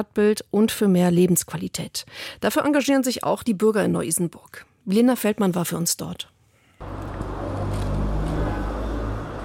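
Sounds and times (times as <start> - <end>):
speech: 0.0 - 7.0
traffic roar of cars passing on Frankfurter Straße in Neu-Isenburg: 6.8 - 9.4.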